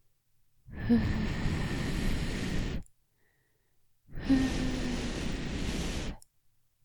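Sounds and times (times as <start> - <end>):
gentle breaths of air blown into the ear: 0.7 - 2.9, 4.1 - 6.2.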